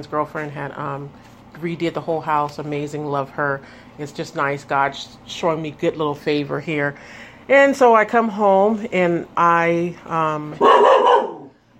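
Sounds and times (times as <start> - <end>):
speech: 0.0 - 11.1
dog barking: 10.6 - 11.5.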